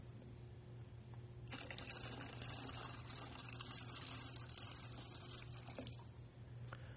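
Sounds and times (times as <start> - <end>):
faint low hum: 0.0 - 6.9
water pouring into a baptismal font during a church liturgy: 1.5 - 6.1.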